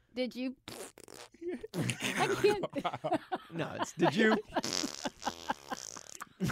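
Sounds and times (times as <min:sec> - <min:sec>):
speech: 0:00.2 - 0:04.9, 0:06.4 - 0:06.5
long buzzy fart: 0:00.6 - 0:02.4, 0:04.5 - 0:06.5
laughter: 0:01.8 - 0:06.5.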